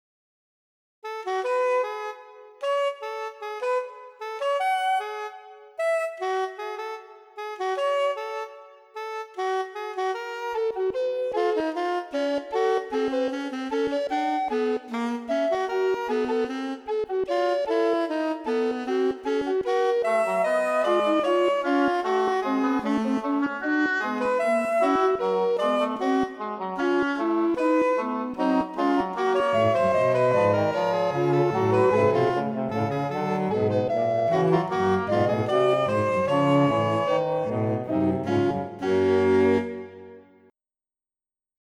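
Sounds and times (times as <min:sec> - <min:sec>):
saxophone in septimal just intonation: 0:01.0 - 0:40.5
tenor oboe in septimal just intonation: 0:01.0 - 0:40.5
cello in septimal just intonation: 0:20.0 - 0:40.0.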